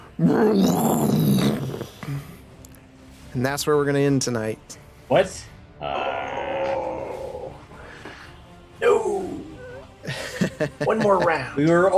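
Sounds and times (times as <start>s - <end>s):
beast letting out a vicious roar: 0.2s - 2.0s, 5.8s - 7.6s
speech: 0.2s - 2.3s, 3.4s - 6.0s, 10.6s - 11.9s
laughter: 10.1s - 11.6s.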